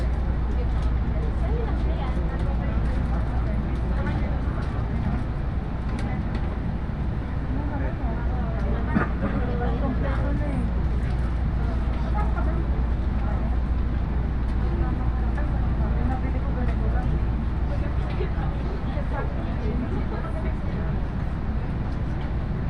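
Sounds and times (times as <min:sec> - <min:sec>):
deep rumble of a moving two-car 313 series train on the Iida Line: 0:00.0 - 0:22.6
passengers chatting in a busy train carriage: 0:00.0 - 0:22.6.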